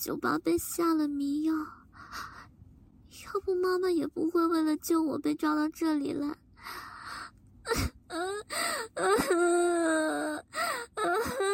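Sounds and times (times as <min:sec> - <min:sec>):
speech: 0:00.0 - 0:02.4, 0:03.2 - 0:06.9, 0:07.7 - 0:11.5
woman crying in sobs and wails: 0:07.7 - 0:11.5.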